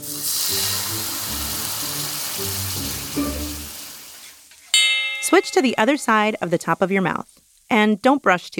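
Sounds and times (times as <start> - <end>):
soft music: 0.0 - 4.1
shallots and garlic sizzling in white wine in a pan: 0.0 - 8.5
speech: 5.4 - 8.5.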